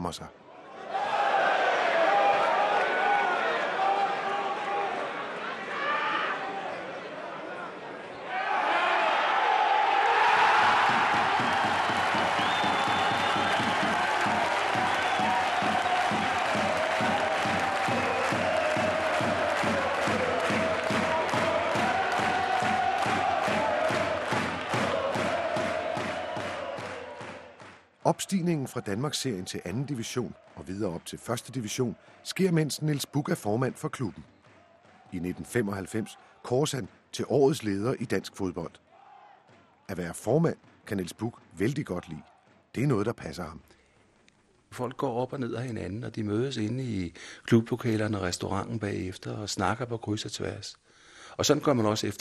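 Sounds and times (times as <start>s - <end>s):
speech: 0.0s - 1.0s, 28.3s - 34.4s, 35.1s - 38.8s, 39.9s - 43.8s, 44.7s - 52.1s
football stadium crowd cheering at Valby Idrætspark in Denmark: 0.5s - 43.1s
rhythmic clapping or chanting of spectators: 10.1s - 37.1s.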